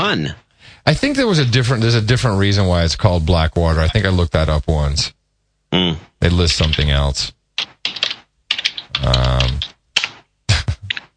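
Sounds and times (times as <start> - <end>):
speech: 0.0 - 8.0, 9.0 - 9.7
typing on a computer keyboard: 6.6 - 7.0, 7.6 - 11.1.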